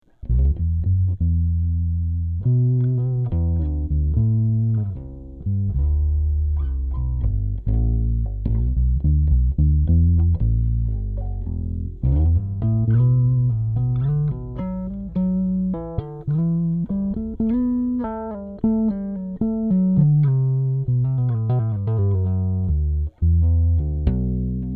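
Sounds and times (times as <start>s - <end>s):
musical improvisation in E minor: 0.2s - 24.7s.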